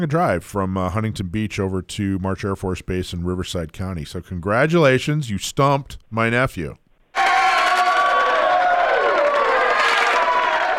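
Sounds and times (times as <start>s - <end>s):
speech: 0.0s - 6.8s
dense crowd cheering with shouts and whoops: 7.1s - 10.7s.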